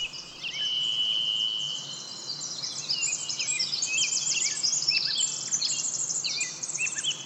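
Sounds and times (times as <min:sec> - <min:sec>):
soft steady hiss: 0:00.0 - 0:04.3
songbird singing ornamented notes and trills: 0:00.0 - 0:05.2.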